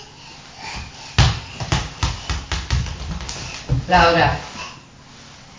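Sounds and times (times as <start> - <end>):
ball bouncing: 0.8 - 4.0
speech: 3.9 - 4.5.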